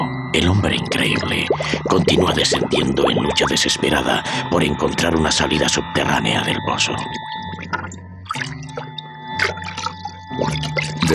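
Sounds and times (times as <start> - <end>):
speech: 0.3 - 7.3, 10.4 - 11.1
underwater bubbles gurgling: 1.2 - 3.5, 7.5 - 11.1.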